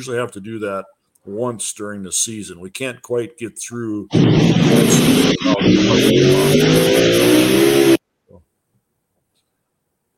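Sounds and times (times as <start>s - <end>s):
speech: 0.0s - 8.0s
race car engine revving on a Saturday night track in Chickasha: 4.1s - 8.0s.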